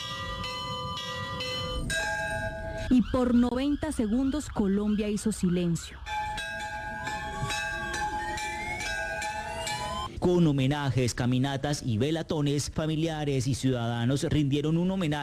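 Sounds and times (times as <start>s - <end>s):
church bells ringing: 0.0s - 3.4s, 6.0s - 10.1s
speech: 2.9s - 6.1s, 10.2s - 15.2s.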